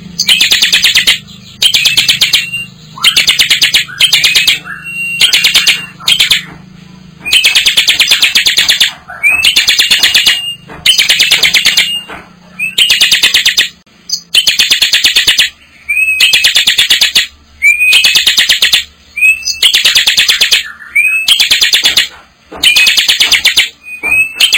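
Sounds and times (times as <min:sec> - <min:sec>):
bar-winged prinia delivering bursts of rapid harsh ticking notes: 0:00.0 - 0:24.5.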